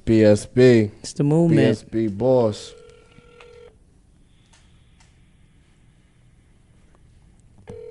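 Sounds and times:
speech: 0:00.1 - 0:02.8
phone keypad tones: 0:02.7 - 0:03.7, 0:07.7 - 0:07.8.

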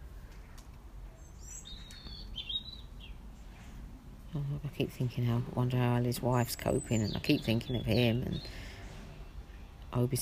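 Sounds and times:
steady low outdoor rumble: 0:00.0 - 0:10.1
bird singing bright high chirping phrases outdoors: 0:00.4 - 0:03.5, 0:06.3 - 0:09.9
speech: 0:04.4 - 0:08.6, 0:10.0 - 0:10.1.

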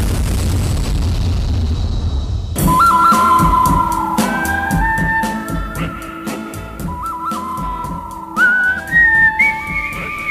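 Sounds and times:
low rumbling noise: 0:00.0 - 0:08.3
person whistling a melody loudly: 0:02.6 - 0:10.2.

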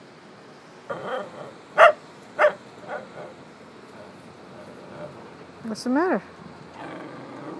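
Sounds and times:
speech: 0:00.9 - 0:01.8, 0:05.6 - 0:06.4
soft quiet dog yelps: 0:00.9 - 0:03.3
dog barking: 0:01.1 - 0:03.2.

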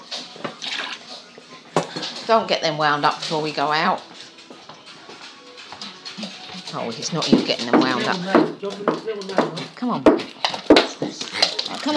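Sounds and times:
water running into a kitchen sink while washing up dishes: 0:00.5 - 0:01.1
speech: 0:02.3 - 0:04.1, 0:06.7 - 0:10.3.

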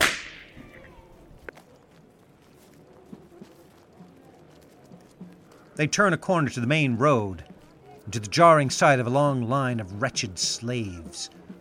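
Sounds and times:
whip crack: 0:00.0 - 0:00.6
speech: 0:05.8 - 0:07.5, 0:08.1 - 0:11.4.

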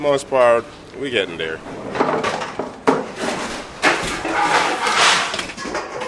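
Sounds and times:
speech: 0:00.0 - 0:02.4
pots and pans clattering in a ship's kitchen from the ship rolling on the Drake Passage: 0:01.9 - 0:06.0.

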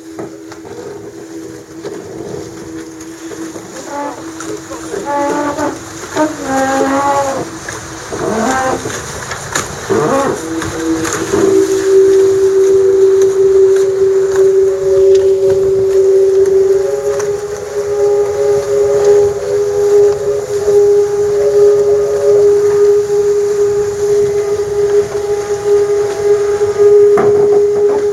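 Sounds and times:
constant rushing water: 0:00.0 - 0:28.1
sailboat hydrofoil humming at about 13.6 knots in very light wind: 0:00.0 - 0:28.1
wind noise: 0:00.0 - 0:28.1.

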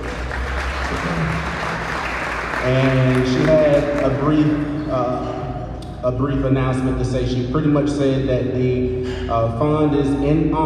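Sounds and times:
audience applause at a community gathering: 0:00.0 - 0:04.6
speech: 0:02.6 - 0:05.4, 0:06.0 - 0:10.6.

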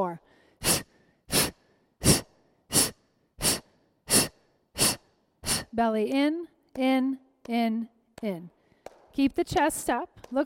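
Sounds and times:
forceful exhaling breaths during an exercise class: 0:00.4 - 0:05.8
speech: 0:05.7 - 0:08.6, 0:09.2 - 0:10.4.

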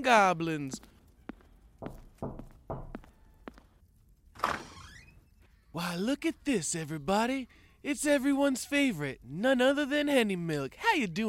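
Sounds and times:
speech: 0:00.0 - 0:00.9, 0:05.8 - 0:11.2
dull knocks on a door: 0:01.8 - 0:03.1
scraping creak: 0:04.4 - 0:05.4.

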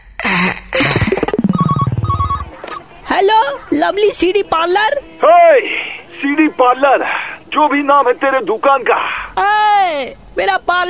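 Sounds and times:
short repeated electronic tones: 0:00.7 - 0:03.8
telephone ringing with fast pulsing trill: 0:01.2 - 0:03.0
speech: 0:03.7 - 0:10.8.

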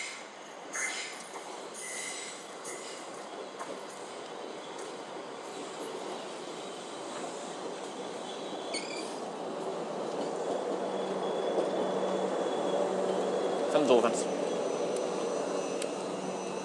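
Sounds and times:
train rolling in to platform at Richmond station: 0:00.0 - 0:16.6
sharp metallic squeals of train brakes and wheels: 0:01.8 - 0:03.0, 0:08.1 - 0:09.2, 0:10.3 - 0:16.6.

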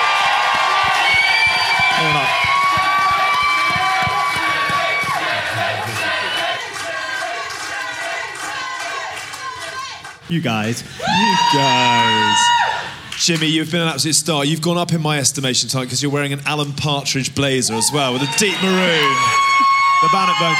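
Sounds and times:
large audience cheering: 0:00.0 - 0:10.1, 0:11.0 - 0:13.0, 0:17.7 - 0:20.5
speech: 0:10.3 - 0:12.6, 0:13.2 - 0:20.5.

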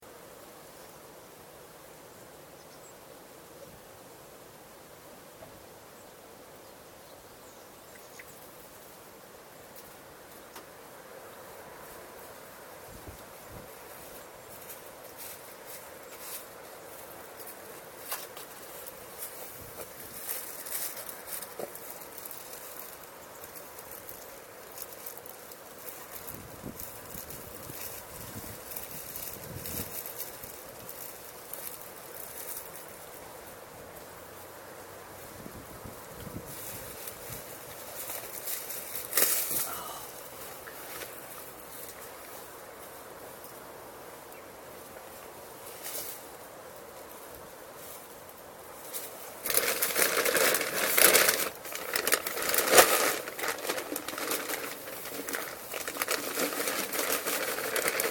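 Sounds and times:
garden soundscape: 0:00.0 - 0:58.1.

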